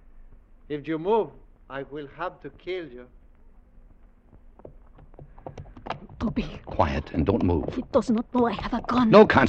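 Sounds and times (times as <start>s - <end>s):
speech: 0.7s - 3.2s, 6.3s - 9.4s
horse hooves clopping across a wooden bridge: 3.3s - 8.0s.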